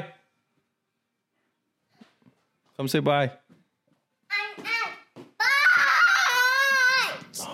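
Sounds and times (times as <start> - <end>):
speech: 2.8 - 3.4
young child yelling: 4.3 - 7.3.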